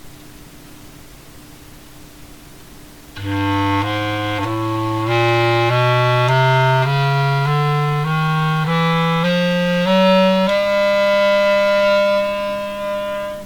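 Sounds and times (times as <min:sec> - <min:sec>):
clarinet playing A sharp note: 0:03.2 - 0:13.4.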